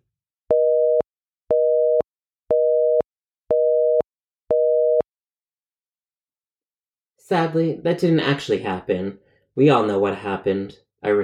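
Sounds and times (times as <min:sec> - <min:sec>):
telephone busy signal of low dual tone beeps: 0:00.5 - 0:05.0
speech: 0:07.3 - 0:11.2.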